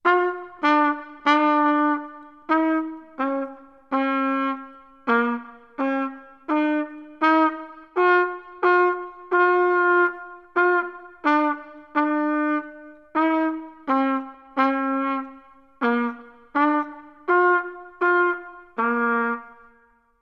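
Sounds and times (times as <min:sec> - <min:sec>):
beginner playing trumpet: 0:00.0 - 0:19.9.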